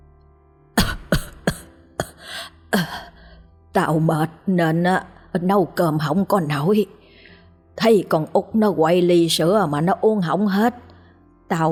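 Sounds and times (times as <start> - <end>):
elderly woman coughing: 0.8 - 3.0
speech: 2.7 - 3.0, 3.8 - 7.0, 7.8 - 10.8, 11.5 - 11.7.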